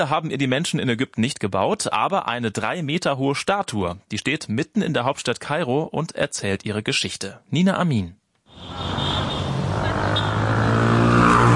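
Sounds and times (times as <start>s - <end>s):
speech: 0.0s - 9.0s
busy city street traffic in Cairo Egypt: 8.5s - 11.5s.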